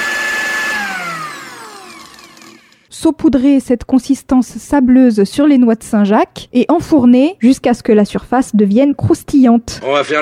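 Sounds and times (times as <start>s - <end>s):
food processor blending mimolette, parmesan, flour and butter into crumble: 0.0s - 2.9s
speech: 3.0s - 10.2s.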